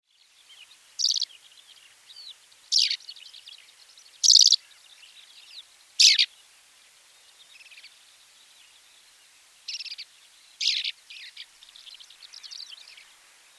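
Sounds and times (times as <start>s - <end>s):
greater short-toed lark: 1.0s - 1.3s, 4.2s - 4.7s, 6.0s - 6.3s, 10.6s - 11.0s.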